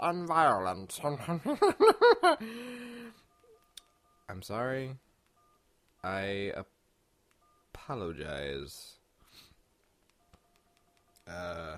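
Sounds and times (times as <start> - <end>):
speech: 0.0 - 2.9, 4.3 - 5.0, 6.0 - 6.7, 7.8 - 9.0, 11.3 - 11.7
faint electronic beeps and short tones: 2.8 - 6.7, 7.3 - 11.7.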